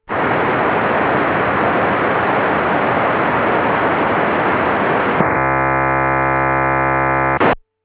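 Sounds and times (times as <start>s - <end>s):
undecoded P25 APCO25 digital radio signal: 0.1s - 7.6s.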